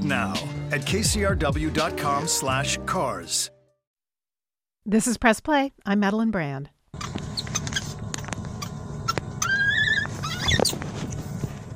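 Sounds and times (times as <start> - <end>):
speech: 0.0 - 3.6, 4.8 - 7.2
baby monkeys squeaking and chirping in a plexiglass cage: 7.0 - 10.8
baby monkey warbling squeal: 8.6 - 10.8.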